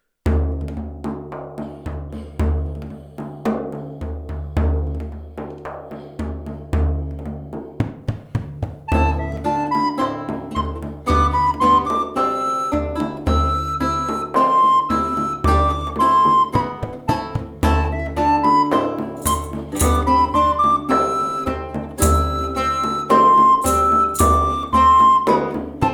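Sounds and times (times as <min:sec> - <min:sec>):
drums: 0:00.2 - 0:25.9
lute: 0:08.6 - 0:25.9
flute: 0:08.8 - 0:25.9.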